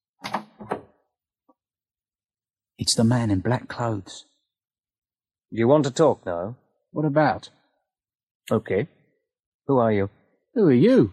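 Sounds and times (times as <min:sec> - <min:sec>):
door opening: 0:00.2 - 0:01.0
speech: 0:02.8 - 0:04.3, 0:05.5 - 0:07.6, 0:08.5 - 0:09.0, 0:09.7 - 0:11.1.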